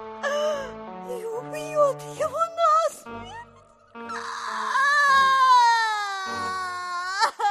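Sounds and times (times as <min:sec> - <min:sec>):
woman sobbing: 0:00.2 - 0:01.6, 0:03.2 - 0:07.4
woman crying and wailing: 0:04.1 - 0:07.4.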